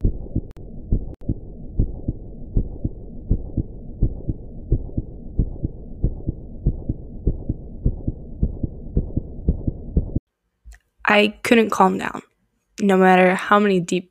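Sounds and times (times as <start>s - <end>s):
faint hum: 0.0s - 10.2s
fast heartbeat sound effect thumping: 0.0s - 10.2s
speech: 11.1s - 14.0s.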